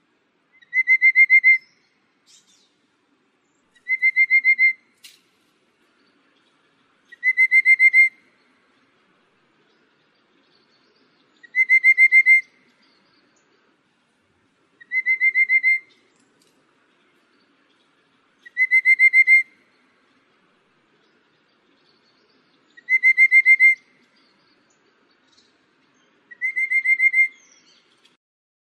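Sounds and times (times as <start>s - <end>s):
rufous-capped babbler calling: 0.5s - 2.8s, 3.7s - 5.0s, 6.1s - 8.6s, 10.6s - 13.6s, 14.8s - 16.3s, 16.9s - 20.1s, 22.1s - 25.6s, 26.2s - 28.1s.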